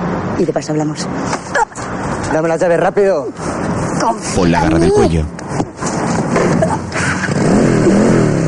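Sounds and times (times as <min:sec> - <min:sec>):
speech: 0:00.4 - 0:01.6, 0:02.3 - 0:05.6
motorcycle engine revving with a rising whine: 0:06.2 - 0:08.4.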